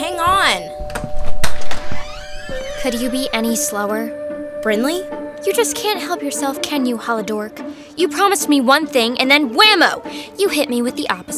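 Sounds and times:
door sliding and creaking open: 0.2 - 3.8
door latch and handle clunks: 0.3 - 2.7
speech: 2.8 - 11.3.

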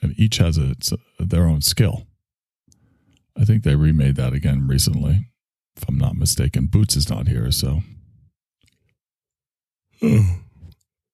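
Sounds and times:
speech: 0.2 - 2.1, 3.4 - 8.0, 10.0 - 10.4
person yawning: 10.0 - 10.8.

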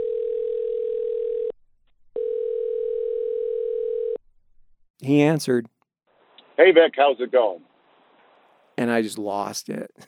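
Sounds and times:
telephone ringback tone after dialing a number: 0.0 - 1.5, 2.2 - 4.2
speech: 5.0 - 5.8, 6.6 - 7.7, 8.8 - 10.0.

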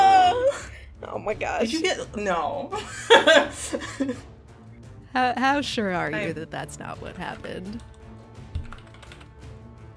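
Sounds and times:
speech: 1.2 - 4.3, 5.2 - 7.9
laughter: 2.7 - 4.2
rapid continuous typing on a computer keyboard: 8.6 - 9.3.

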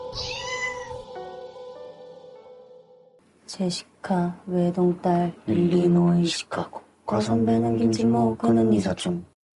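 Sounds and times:
cat meowing: 0.1 - 1.0
speech: 3.5 - 9.3.

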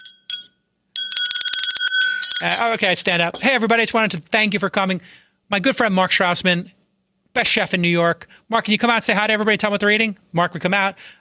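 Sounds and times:
glass tapped to get the attention of guests: 0.0 - 3.5
speech: 2.4 - 6.8, 7.4 - 11.1.

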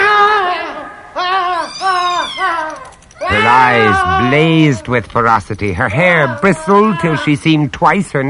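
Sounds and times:
cat yowling as it attacks a man: 0.0 - 5.0, 6.0 - 7.3
speech: 2.4 - 8.2.

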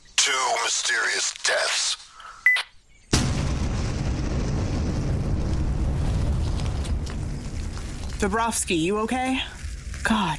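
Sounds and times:
speech: 0.7 - 2.0, 8.2 - 10.3
white phosphorus grenade exploding: 3.1 - 8.2.

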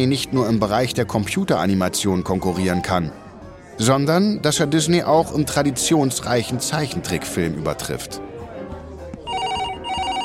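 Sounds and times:
speech: 0.0 - 3.2, 3.8 - 8.3
telephone ringing: 9.3 - 10.2.

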